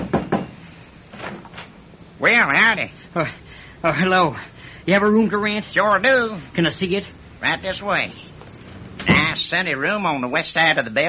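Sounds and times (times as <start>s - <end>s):
knocking on the wooden door of a place with rooms to rent: 0.0s - 0.6s
speech: 2.2s - 8.2s, 9.0s - 11.0s.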